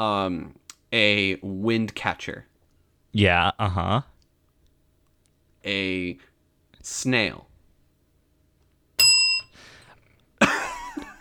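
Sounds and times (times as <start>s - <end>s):
speech: 0.0s - 2.5s, 3.1s - 4.1s, 5.6s - 7.5s
single bright bell ding: 9.0s - 9.6s.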